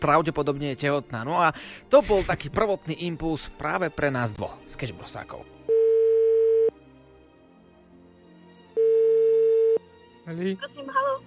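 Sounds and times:
speech: 0.0s - 5.6s, 10.3s - 11.2s
telephone ringback tone: 5.7s - 6.7s, 8.8s - 9.8s.

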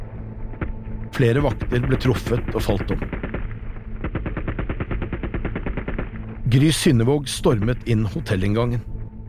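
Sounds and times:
speech: 1.2s - 3.3s, 6.5s - 8.9s
automatic rifle gunfire with faint echo: 1.6s - 6.3s.

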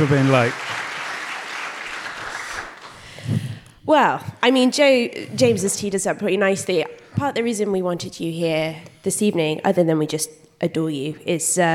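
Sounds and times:
speech: 0.0s - 0.8s, 3.9s - 11.7s
live audience applauding: 0.0s - 3.1s.

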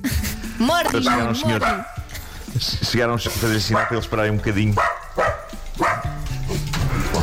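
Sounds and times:
speech: 0.6s - 2.0s, 2.6s - 4.9s
several dogs barking: 1.0s - 2.1s, 3.5s - 7.2s.

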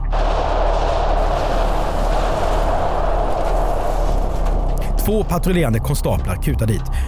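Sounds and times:
loud explosion blast: 0.0s - 5.4s
speech: 5.1s - 7.0s.

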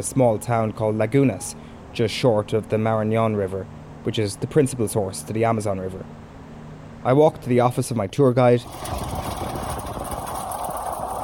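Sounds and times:
speech: 0.0s - 6.2s, 7.0s - 9.1s
quad bike engine idling while hitched to a trailer of supplies: 8.6s - 11.2s.

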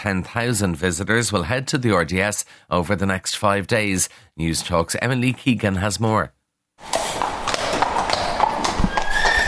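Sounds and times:
speech: 0.0s - 7.0s
busy outdoor noise: 6.8s - 9.4s
horses' hooves clip-clopping on a hard surface: 6.8s - 9.4s.

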